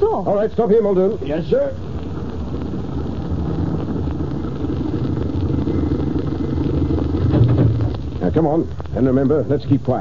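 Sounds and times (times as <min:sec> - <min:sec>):
speech: 0:00.1 - 0:02.8, 0:08.4 - 0:10.0
car engine slowing as the car stops: 0:01.8 - 0:09.0.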